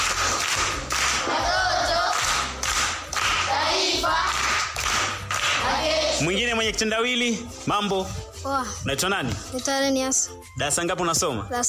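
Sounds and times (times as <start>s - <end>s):
group applauding a child at a primary school gathering: 0.0s - 6.2s
speech: 6.2s - 11.6s.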